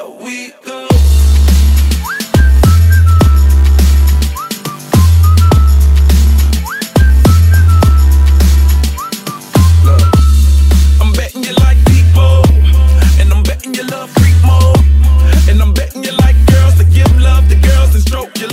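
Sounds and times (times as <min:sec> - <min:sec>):
loud pounding dance beat with heavy bass: 0:00.9 - 0:18.5
shrill whistle blasts with quick upward swoops: 0:01.8 - 0:10.6.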